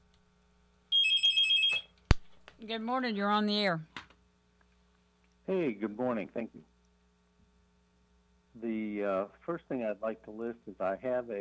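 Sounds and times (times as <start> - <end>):
telephone electronic ring: 0.9 - 1.9
speech: 2.6 - 3.9, 5.5 - 6.7, 8.6 - 11.3.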